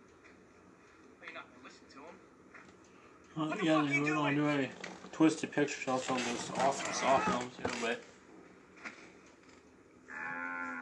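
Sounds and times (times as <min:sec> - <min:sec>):
speech: 0:01.7 - 0:02.8, 0:03.4 - 0:08.1
cow mooing: 0:10.1 - 0:10.8.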